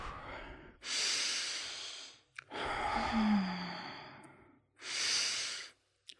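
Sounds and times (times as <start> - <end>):
slow deep breathing into the belly then the chest: 0.0 - 6.1.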